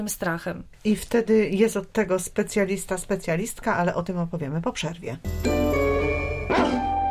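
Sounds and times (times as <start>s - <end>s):
speech: 0.0s - 5.8s
dog barking and yipping: 6.5s - 7.0s.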